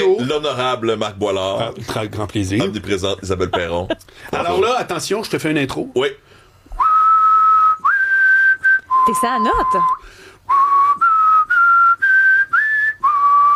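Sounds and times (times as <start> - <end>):
speech: 0.3 - 6.4, 9.0 - 10.2
laughter: 2.6 - 4.8
person whistling a melody: 6.8 - 13.5.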